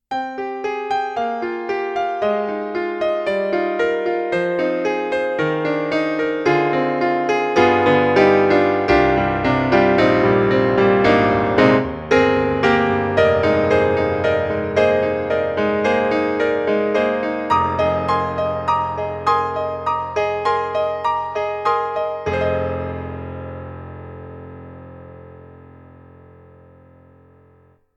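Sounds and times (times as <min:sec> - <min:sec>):
Kurzweil MicroPiano MP-1 stage piano solo beat-tuned tuning: 0:00.1 - 0:27.8.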